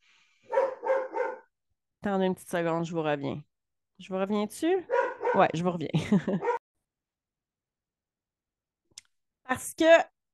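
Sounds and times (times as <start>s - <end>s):
dog barking: 0.4s - 1.5s, 4.9s - 5.6s, 6.4s - 6.6s
speech: 2.0s - 6.6s, 9.6s - 10.1s
laughter: 5.9s - 6.6s.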